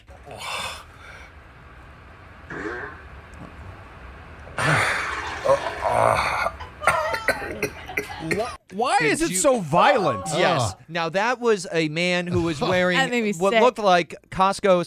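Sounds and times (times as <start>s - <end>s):
man farting loudly while lying in bed: 4.5s - 8.6s
speech: 8.8s - 14.8s.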